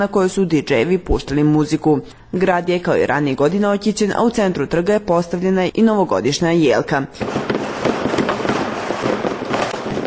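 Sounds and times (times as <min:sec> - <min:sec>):
speech: 0:00.0 - 0:07.5
fireworks and firecrackers at a New Year celebration in a city square: 0:07.2 - 0:10.0.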